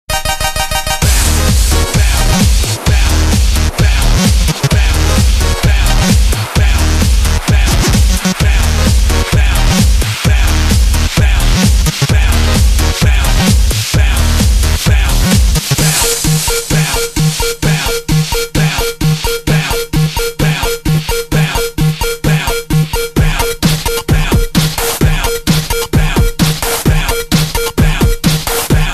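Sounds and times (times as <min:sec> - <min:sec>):
8 bit dance music mix: 0:00.1 - 0:28.9.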